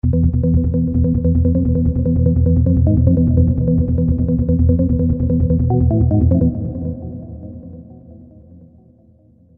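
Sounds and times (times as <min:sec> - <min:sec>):
organ techno music on a Roland JV2080: 0:00.0 - 0:07.6.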